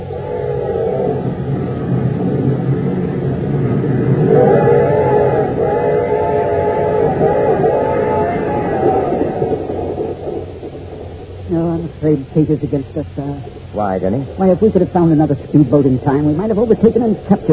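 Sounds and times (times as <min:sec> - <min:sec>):
train horn wail: 0:00.0 - 0:10.1
fast express train roaring: 0:00.0 - 0:17.5
speech: 0:12.4 - 0:17.5.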